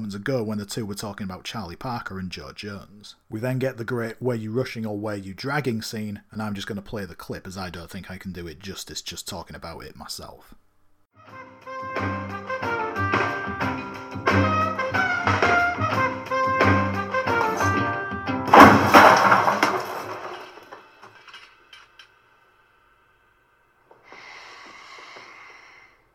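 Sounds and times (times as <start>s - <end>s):
speech: 0.1s - 10.6s
band playing: 11.2s - 18.7s
chair hurled and slamming into a wall: 17.2s - 21.2s
scattered clatter: 18.5s - 22.1s.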